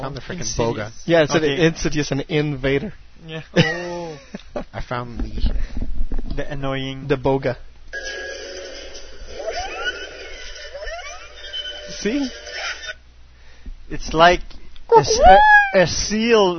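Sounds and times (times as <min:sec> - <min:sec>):
speech: 0:00.0 - 0:08.2, 0:11.9 - 0:12.4, 0:13.9 - 0:16.5
film creature squealing warbling call: 0:10.8 - 0:11.6, 0:14.9 - 0:15.9.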